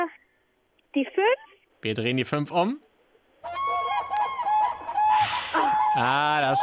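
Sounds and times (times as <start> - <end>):
speech: 1.0 - 2.8, 6.0 - 6.6
geese honking: 3.4 - 6.6.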